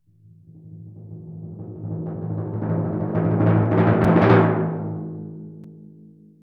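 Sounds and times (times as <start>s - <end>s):
roiling timpani roll: 0.5s - 5.6s.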